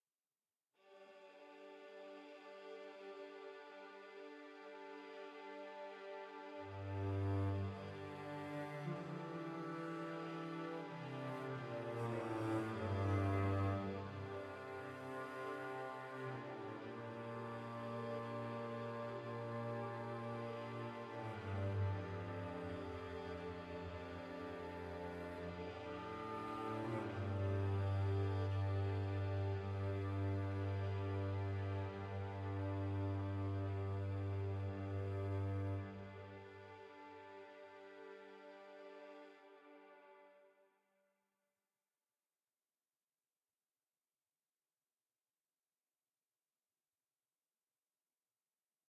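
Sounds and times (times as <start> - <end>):
ambient music: 4.1 - 39.9.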